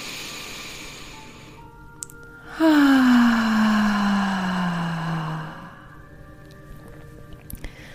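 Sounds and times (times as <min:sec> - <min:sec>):
deep voiced exhalation during a guided breathing relaxation exercise: 0:02.4 - 0:06.0.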